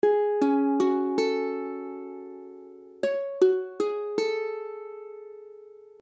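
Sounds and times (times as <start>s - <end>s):
ukulele playing F sharp minor add nine chord: 0.0s - 6.0s.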